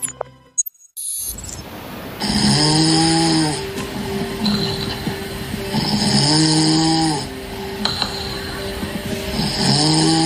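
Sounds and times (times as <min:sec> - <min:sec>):
loud human snoring with breathy airflow: 0:02.2 - 0:03.8, 0:04.4 - 0:10.2.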